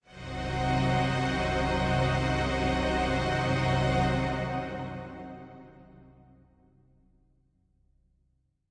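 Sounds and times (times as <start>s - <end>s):
heavy string pad in C: 0.2s - 5.7s.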